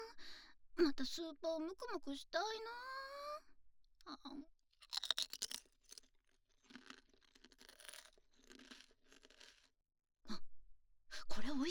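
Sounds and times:
speech: 0:00.8 - 0:03.0, 0:04.0 - 0:04.6, 0:11.4 - 0:11.6
consommé-flavoured potato chips crunched while eaten with disposable wooden chopsticks: 0:04.8 - 0:09.8.

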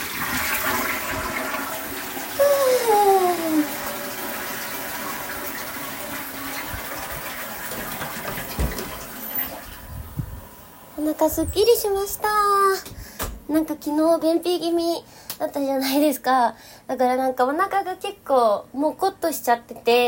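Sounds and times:
toilet flushing: 0:00.0 - 0:10.9
speech: 0:11.2 - 0:12.9, 0:13.5 - 0:20.0.

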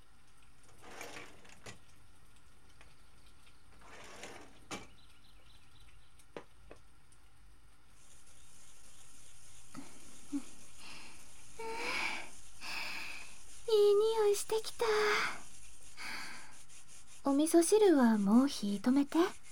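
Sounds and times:
daikon radish being grated by hand: 0:03.4 - 0:04.9, 0:07.9 - 0:19.4
speech: 0:17.3 - 0:19.4.

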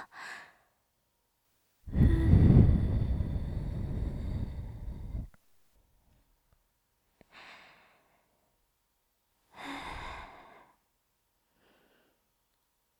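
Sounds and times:
soft breath blown into the ear to finish an ear cleaning: 0:01.9 - 0:05.4.

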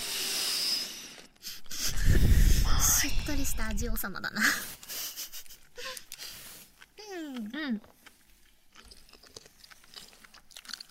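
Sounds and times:
speech: 0:03.0 - 0:04.8, 0:07.4 - 0:08.0
crunchy chewing of stalk wakame seaweed: 0:05.5 - 0:10.8.

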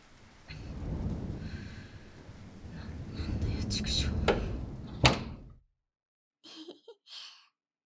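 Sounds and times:
heavy rain pouring: 0:00.0 - 0:05.5
loud deep rumble of thunder: 0:00.1 - 0:05.6.

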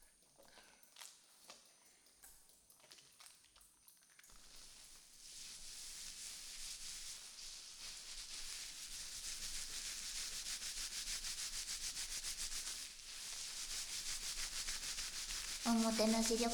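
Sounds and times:
hair being shampooed at a Japanese inn: 0:04.3 - 0:16.5
speech: 0:15.8 - 0:16.5.

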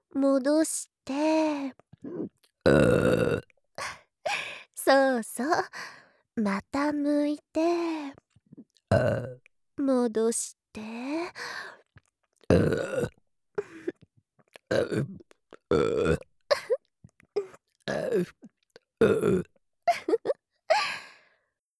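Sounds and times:
speech: 0:00.2 - 0:03.9, 0:04.9 - 0:11.8, 0:12.5 - 0:13.2, 0:14.7 - 0:16.3, 0:17.9 - 0:18.4, 0:19.0 - 0:20.4
woman burping: 0:02.0 - 0:03.4, 0:08.9 - 0:09.4, 0:12.5 - 0:14.0, 0:14.7 - 0:16.8, 0:17.4 - 0:21.0.

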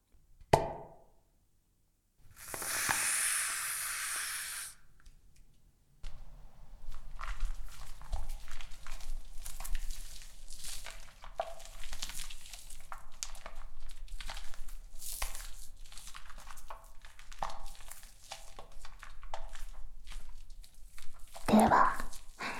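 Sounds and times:
shaving foam fizzing and crackling: 0:02.3 - 0:04.8, 0:06.8 - 0:22.5
store-bought aerosol foam can spraying shaving foam: 0:02.3 - 0:04.8
speech: 0:21.6 - 0:22.0.

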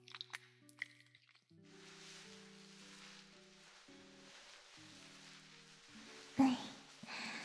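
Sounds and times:
wet squishing of shampoo being lathered into hair during a head spa: 0:00.0 - 0:02.2
gentle music: 0:00.0 - 0:07.4.

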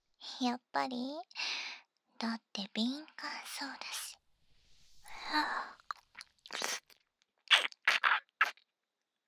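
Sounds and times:
speech: 0:00.3 - 0:01.5, 0:02.2 - 0:04.1, 0:05.3 - 0:05.8
wet mouth noises and ear-licking smacks: 0:05.1 - 0:08.6.

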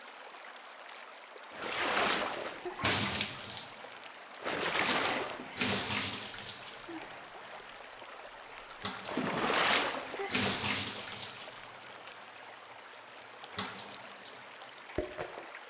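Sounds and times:
water poured to rinse someone before entering a hot spring: 0:00.0 - 0:15.6.

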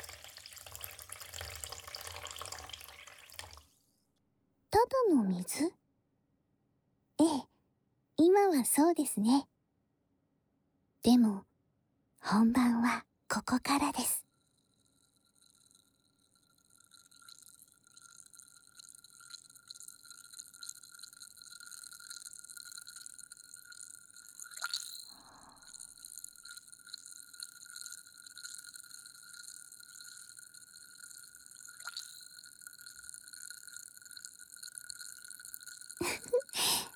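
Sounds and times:
carbonated water fizzing as tiny bubbles pop: 0:00.0 - 0:03.8, 0:16.4 - 0:36.9
speech: 0:05.0 - 0:05.8, 0:08.6 - 0:09.5, 0:11.0 - 0:11.5, 0:12.2 - 0:14.2.

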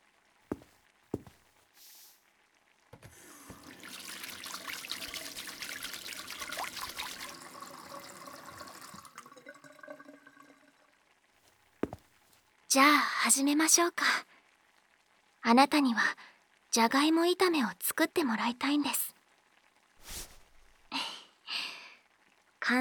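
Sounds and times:
hands washed under running tap water: 0:03.0 - 0:10.7
speech: 0:12.7 - 0:14.1, 0:15.5 - 0:19.0.

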